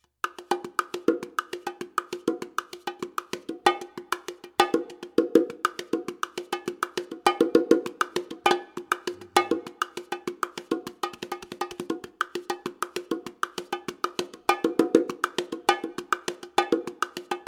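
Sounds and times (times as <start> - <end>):
bongos: 0.2 - 17.4.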